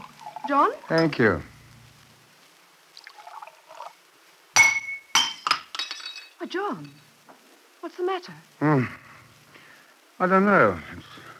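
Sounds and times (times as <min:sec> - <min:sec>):
speech: 0:00.5 - 0:01.5, 0:06.4 - 0:07.0, 0:07.8 - 0:09.0, 0:10.2 - 0:11.1
drinking glass slipping from hand and clinking: 0:01.0 - 0:01.2, 0:04.6 - 0:07.1.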